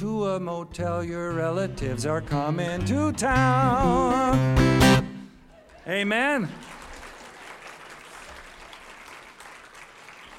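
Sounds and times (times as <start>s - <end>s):
speech: 0.0s - 5.0s, 5.8s - 6.8s
audience applause after a sung song: 5.6s - 10.3s.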